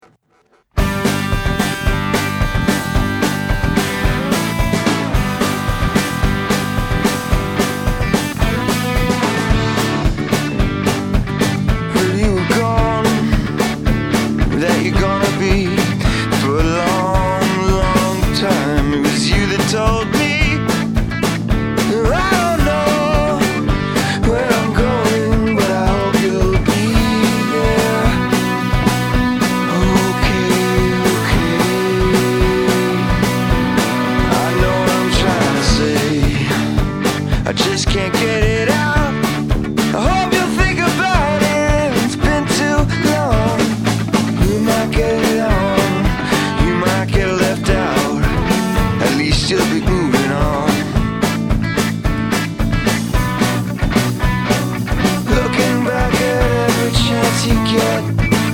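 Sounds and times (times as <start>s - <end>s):
drums: 0.0s - 58.5s.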